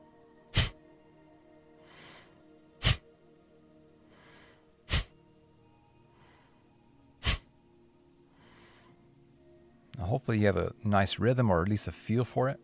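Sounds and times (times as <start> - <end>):
forceful exhales through the nose during breathing practice: 0.6 - 0.8, 1.9 - 3.0, 4.2 - 5.1, 7.2 - 7.5
soft inhale: 1.8 - 3.0, 4.0 - 5.2, 6.0 - 7.5, 8.3 - 9.2
speech: 10.0 - 12.6.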